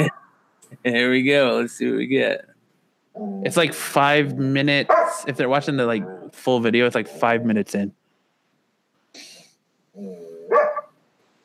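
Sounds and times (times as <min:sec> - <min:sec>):
speech: 0:00.0 - 0:00.2, 0:00.8 - 0:02.5, 0:03.2 - 0:08.0
dog barking and yelping at its owner: 0:04.9 - 0:05.3, 0:10.5 - 0:10.9.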